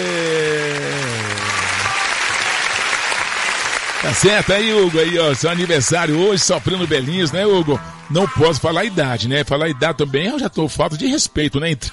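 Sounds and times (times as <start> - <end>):
person calling out: 0.0 - 2.1
crowd applauding: 0.0 - 9.1
speech: 4.0 - 11.9.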